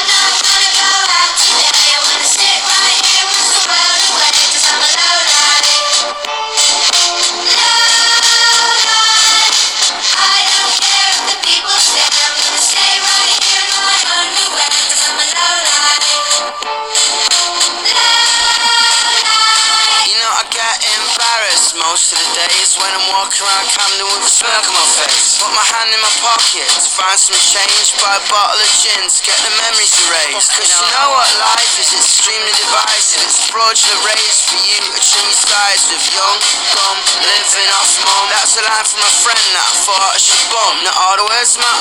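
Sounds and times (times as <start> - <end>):
electronic techno song with layered synth tones: 0.0 - 41.8.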